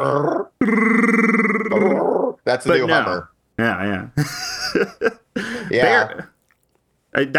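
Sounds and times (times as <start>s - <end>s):
voice imitating a Wookiee growl: 0.0s - 2.4s
speech: 2.5s - 4.9s, 5.7s - 6.3s, 7.2s - 7.3s
laughter: 4.2s - 6.3s.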